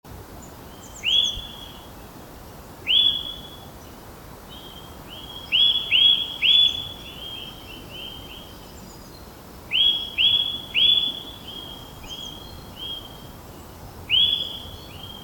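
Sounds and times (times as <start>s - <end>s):
low hiss: 0.1s - 15.2s
Eurasian nuthatch whistled calls: 0.9s - 1.8s, 2.9s - 3.6s, 4.6s - 8.4s, 9.7s - 13.2s, 14.1s - 15.2s.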